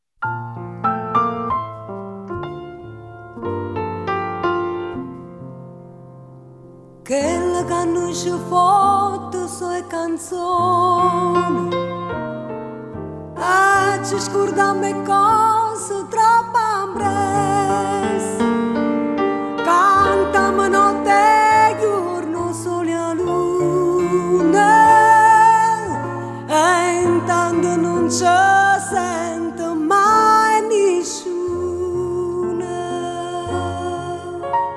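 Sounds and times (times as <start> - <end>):
piano: 0.0 - 34.7
voice: 7.1 - 11.8, 13.4 - 18.4, 19.7 - 34.5.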